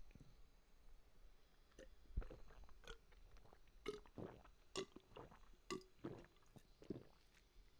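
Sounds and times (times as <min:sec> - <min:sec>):
person drinking from a water bottle: 0:01.8 - 0:07.2.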